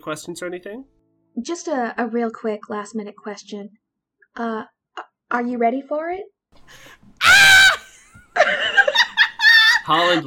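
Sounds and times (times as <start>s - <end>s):
speech: 0.0s - 3.8s, 4.4s - 7.6s, 9.9s - 10.2s
person screaming in another room: 7.2s - 7.9s
laughter: 7.7s - 10.2s.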